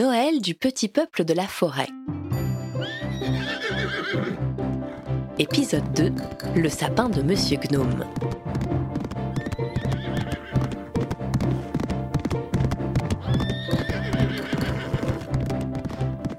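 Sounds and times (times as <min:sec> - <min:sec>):
speech: 0:00.0 - 0:02.2, 0:02.8 - 0:04.8, 0:05.4 - 0:08.8
black horse whinnying loudly: 0:02.8 - 0:05.0, 0:09.3 - 0:10.8, 0:13.1 - 0:15.4
black horse's hooves clip-clopping: 0:05.7 - 0:16.3.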